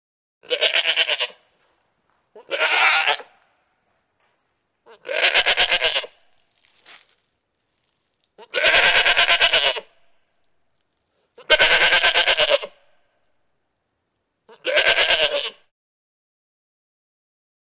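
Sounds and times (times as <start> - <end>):
goats bleating: 0.4 - 1.4, 2.4 - 3.4, 4.9 - 6.2, 8.4 - 9.9, 11.4 - 12.7, 14.5 - 15.6.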